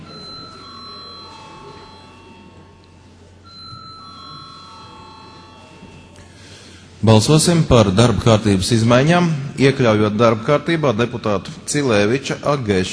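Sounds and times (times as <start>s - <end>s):
electronic parliamentary chamber bell ringing to call a vote: 0.0s - 6.7s
faint room murmur: 0.0s - 12.9s
speech: 7.0s - 12.9s.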